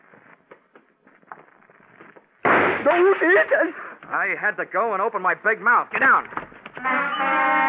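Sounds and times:
gunshot: 0:02.4 - 0:03.0
bullet crashing into a glass showcase: 0:02.4 - 0:03.7
speech: 0:02.8 - 0:07.6.

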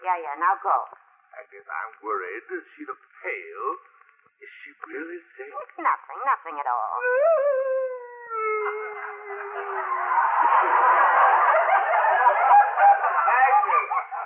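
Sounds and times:
speech: 0:00.1 - 0:07.8, 0:08.6 - 0:09.3, 0:10.4 - 0:11.1
woman howling loudly in the bedroom: 0:07.0 - 0:10.1
laughter: 0:08.3 - 0:14.2.

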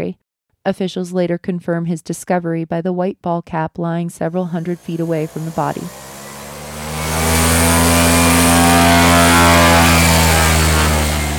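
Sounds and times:
speech: 0:00.0 - 0:06.0
small airplane engine droning while taking off: 0:04.3 - 0:11.3.

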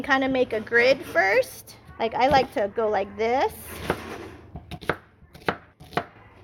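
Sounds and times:
speech: 0:00.0 - 0:04.2
knife chopping an onion on a cutting board: 0:03.8 - 0:06.1.

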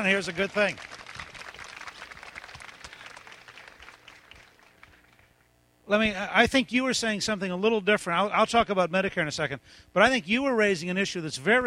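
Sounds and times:
speech: 0:00.0 - 0:01.0, 0:05.9 - 0:11.6
crowd applauding: 0:00.0 - 0:05.4.

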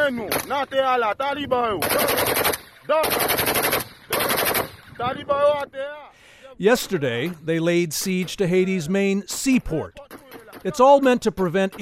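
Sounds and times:
speech: 0:00.1 - 0:03.8, 0:05.0 - 0:06.0, 0:06.6 - 0:11.8
semi-automatic rifle fire bursts at an international airport: 0:01.8 - 0:05.2, 0:10.0 - 0:11.8.

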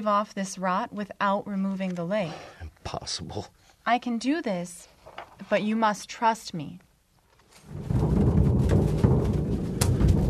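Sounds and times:
speech: 0:00.0 - 0:06.8
thunder from nearby lightning: 0:07.6 - 0:10.2.

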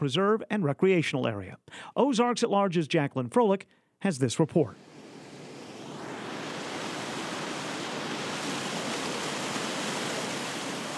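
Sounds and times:
speech: 0:00.0 - 0:05.0
river water rushing: 0:04.8 - 0:10.9.

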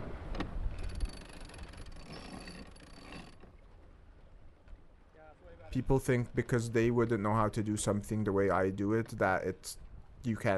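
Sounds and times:
sailboat jib flapping: 0:00.0 - 0:07.2
water noise: 0:00.0 - 0:10.5
wind: 0:00.0 - 0:10.5
sailboat winch ratcheting as the jib is sheeted in: 0:00.4 - 0:03.5
speech: 0:05.7 - 0:10.5.

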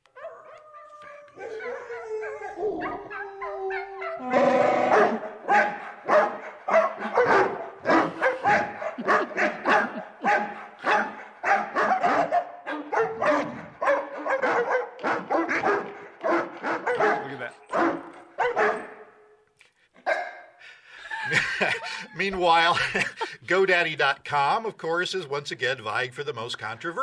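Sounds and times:
dog howling in a TV commercial: 0:00.1 - 0:18.7
speech: 0:01.4 - 0:03.2, 0:22.3 - 0:27.0
laughter: 0:07.0 - 0:11.2, 0:20.8 - 0:23.8.

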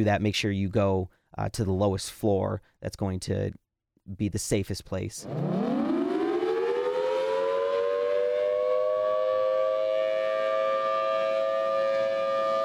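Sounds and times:
speech: 0:00.0 - 0:05.8
outdoor storm warning siren wailing: 0:05.2 - 0:12.6.

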